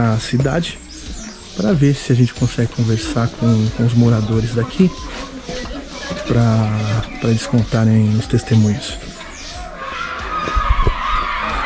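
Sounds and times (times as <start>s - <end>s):
speech: 0.0s - 0.9s, 1.6s - 5.3s, 6.2s - 9.1s
outdoor street noise: 0.0s - 11.6s
voices of a group of children passing by: 4.0s - 11.6s.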